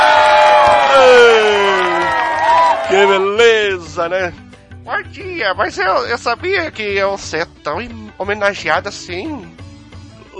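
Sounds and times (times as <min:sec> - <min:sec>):
studio audience cheering and whooping on a morning talk show: 0:00.0 - 0:03.3
speech: 0:03.0 - 0:09.6.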